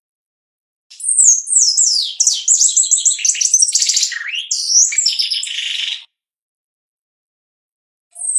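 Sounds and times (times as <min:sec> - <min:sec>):
Shiny cowbird singing: 0:01.0 - 0:06.1.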